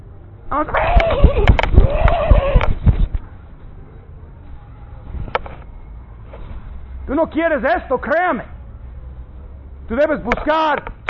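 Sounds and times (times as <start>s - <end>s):
speech: 0.5s - 2.0s, 7.1s - 8.5s, 9.9s - 10.9s
horse giving a loud whinny: 0.7s - 2.7s
horse hooves clip-clopping: 0.8s - 3.2s.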